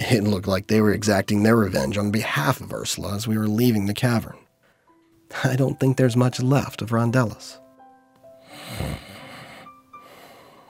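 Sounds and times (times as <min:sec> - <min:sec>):
speech: 0:00.1 - 0:04.4, 0:05.3 - 0:07.6
snoring: 0:08.4 - 0:10.6.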